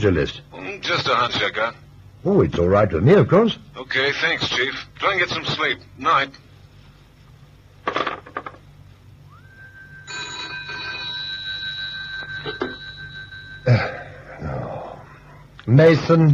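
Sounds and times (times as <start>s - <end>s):
speech: 0.0s - 6.5s, 13.6s - 14.0s, 15.7s - 16.3s
steady electronic tones: 9.2s - 15.3s
telephone ringing: 10.0s - 14.2s.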